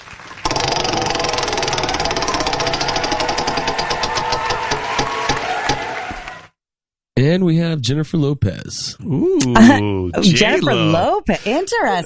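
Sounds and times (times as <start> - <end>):
prize wheel being spun ticking: 0.5 - 5.8
speech: 7.2 - 12.0.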